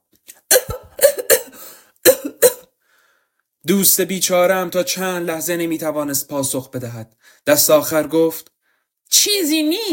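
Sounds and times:
harsh raspy coughing fit: 0.5 - 2.7
speech: 3.6 - 9.9.

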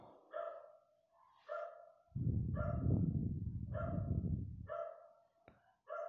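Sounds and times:
dog barking in short sharp yaps: 0.2 - 3.0, 3.7 - 5.2, 5.8 - 6.0
loud low rumbling noise: 2.2 - 4.7.

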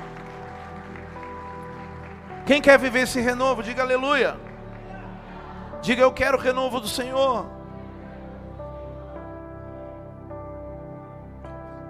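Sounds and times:
audience applauding in a large room: 0.0 - 6.4
sustained keyboard chords: 0.0 - 11.8
speech: 2.4 - 4.4, 5.8 - 7.6.

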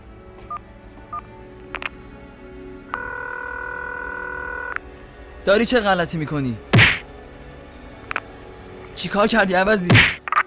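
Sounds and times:
steady continuous dual-pitched phone tone: 3.0 - 4.8
speech: 5.5 - 6.7, 9.0 - 10.2.

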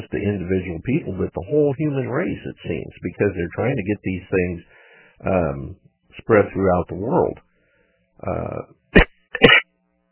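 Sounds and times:
speech: 0.0 - 7.5, 8.2 - 9.6
dry throaty coughs: 9.0 - 9.6.

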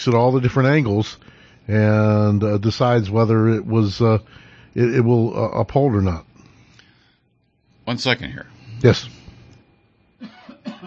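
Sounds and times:
speech: 0.0 - 6.3, 7.9 - 9.2
short throaty coughs: 10.2 - 10.8.

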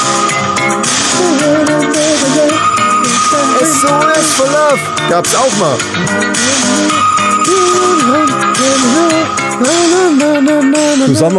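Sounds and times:
loud dense synth-pop backing with gliding melodic lines: 0.0 - 11.3
sonar-like synth ping: 2.5 - 9.9
speech: 3.8 - 11.3.

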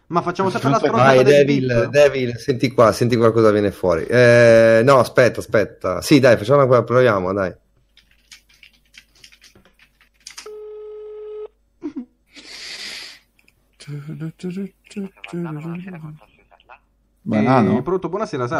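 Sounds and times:
speech: 0.1 - 7.6, 13.9 - 16.3, 17.2 - 18.5
telephone ringing tone as a number is dialed: 10.5 - 11.5.

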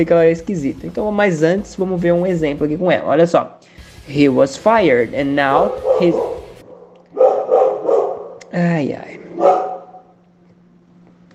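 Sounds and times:
speech: 0.0 - 6.4, 8.5 - 9.7
small dog barking and yelping: 5.7 - 8.4, 9.4 - 10.1.

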